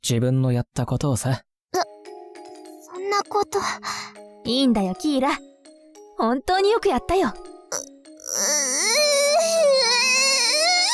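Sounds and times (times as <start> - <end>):
speech: 0.0 - 1.5, 3.1 - 5.5, 6.2 - 7.5
woman crying in a sustained wail: 8.4 - 10.9.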